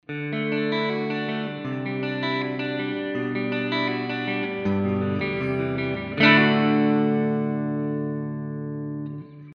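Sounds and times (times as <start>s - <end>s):
jazz chorus amplifier tone on normal channel: 0.1s - 9.5s.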